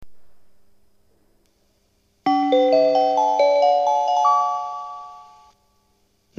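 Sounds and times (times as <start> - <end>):
subway train approaching track 1: 2.3 - 4.8.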